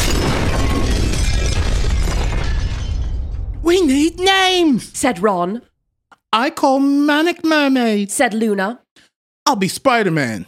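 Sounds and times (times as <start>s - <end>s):
glass shattering: 0.0s - 4.4s
speech: 3.7s - 5.7s, 6.3s - 8.8s, 9.5s - 10.4s.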